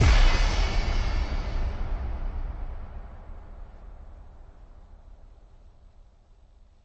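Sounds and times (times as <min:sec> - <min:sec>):
drop kick drum hit: 0:00.0 - 0:04.5.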